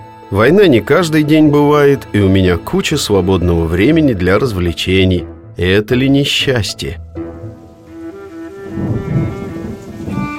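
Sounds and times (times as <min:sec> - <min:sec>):
speech: 0:00.3 - 0:07.0
steady rain: 0:07.3 - 0:10.3
deep roll of thunder: 0:07.4 - 0:10.3.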